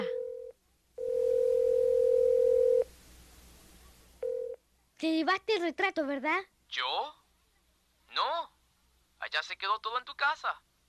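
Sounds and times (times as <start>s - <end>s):
faint room hiss: 0.0s - 10.8s
loud steady telephone dial tone: 0.2s - 2.8s, 4.2s - 4.6s
speech: 5.0s - 7.2s, 8.2s - 8.5s, 9.2s - 10.6s.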